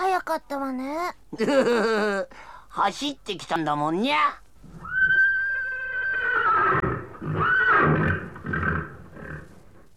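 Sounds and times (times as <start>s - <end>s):
speech: 0.3s - 4.4s
horse neighing: 4.8s - 9.6s.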